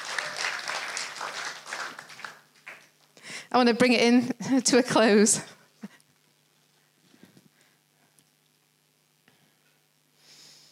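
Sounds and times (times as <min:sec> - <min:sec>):
crowd clapping and cheering: 0:00.0 - 0:03.0
speech: 0:03.5 - 0:05.6.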